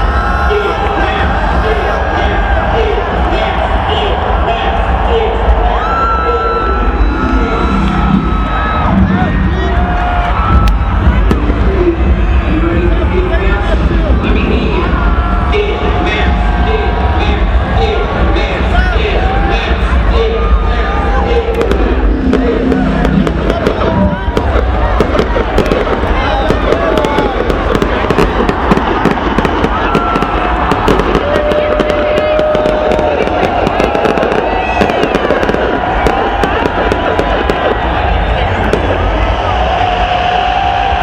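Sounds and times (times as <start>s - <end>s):
people cheering: 0.0s - 41.0s
roar of a large crowd: 0.0s - 41.0s
fireworks popping and crackling: 10.5s - 11.8s, 21.5s - 39.3s.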